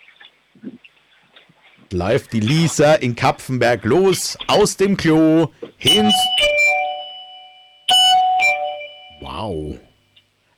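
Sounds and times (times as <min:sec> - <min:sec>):
speech: 0:01.9 - 0:06.6, 0:09.4 - 0:09.9
loud household doorbell ringing ding-dong: 0:05.9 - 0:09.8.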